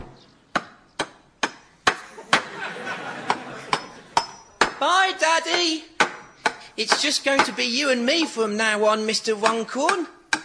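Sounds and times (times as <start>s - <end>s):
hammer striking wood: 0.6s - 2.5s, 3.3s - 4.8s, 5.5s - 8.3s, 9.4s - 10.4s
laughter: 2.0s - 4.3s
speech: 4.8s - 5.9s, 6.8s - 10.2s.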